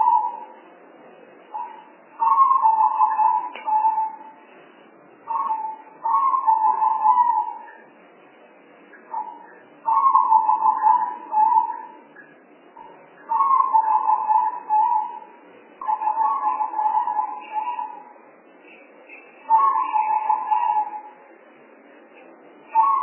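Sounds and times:
spotted dove cooing used as a lure call: 0.0 - 0.6, 1.6 - 4.3, 5.3 - 7.8, 9.1 - 12.0, 12.8 - 18.1, 19.5 - 21.2, 22.7 - 23.0.

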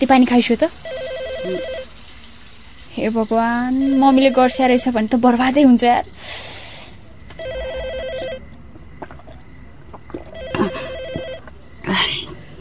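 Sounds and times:
speech: 0.0 - 1.8, 3.0 - 6.6
telephone ringing with a warbling electronic tone: 0.8 - 1.9, 3.7 - 4.9, 7.4 - 8.5, 10.4 - 11.5
hiss: 6.1 - 7.0.

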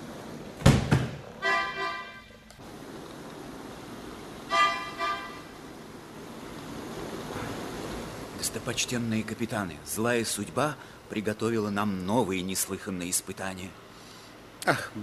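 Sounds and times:
faint steady hiss: 0.0 - 15.0
car horn honking as a car arrives: 1.4 - 2.4, 4.5 - 5.5
speech: 8.5 - 13.8, 14.6 - 15.0.

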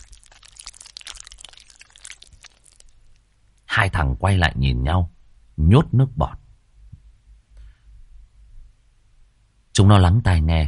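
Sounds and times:
bones cracking and crunching while being chewed: 0.0 - 3.3
speech: 3.8 - 6.4, 9.8 - 10.6.

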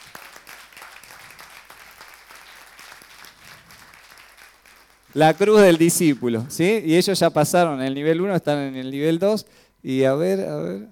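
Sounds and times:
church congregation applauding: 0.0 - 6.7
speech: 5.2 - 10.8.

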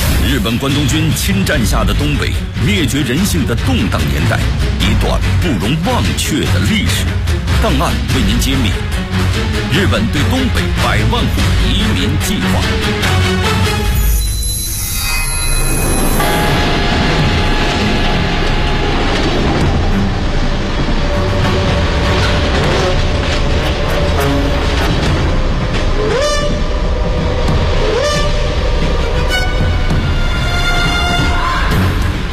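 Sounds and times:
1930s train arriving at a town near Jiamusi, Heilongjiang: 0.0 - 14.0, 15.6 - 32.3
speech: 0.3 - 13.7
high tonal whistling: 13.6 - 32.2.

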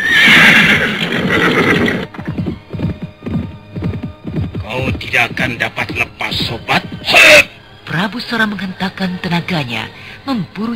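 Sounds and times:
horse neighing: 0.0 - 2.5, 7.0 - 7.6
horse hooves clip-clopping at a run: 0.0 - 7.6
speech: 5.2 - 10.7.

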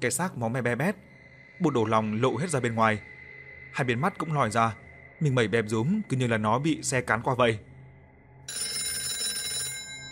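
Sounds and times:
speech: 0.0 - 3.1, 3.7 - 7.7, 8.5 - 8.8
telephone ringing loudly: 8.5 - 10.1.

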